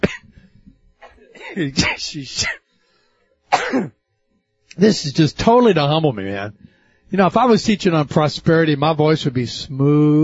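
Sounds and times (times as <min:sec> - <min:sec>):
man clearing his throat during a Bible teaching: 0:00.0 - 0:00.4, 0:01.0 - 0:02.7, 0:03.5 - 0:04.0
man coughing during a Bible teaching: 0:00.0 - 0:00.4, 0:01.0 - 0:02.7, 0:03.5 - 0:04.0
speech: 0:01.5 - 0:02.6, 0:03.7 - 0:04.0, 0:04.8 - 0:10.2.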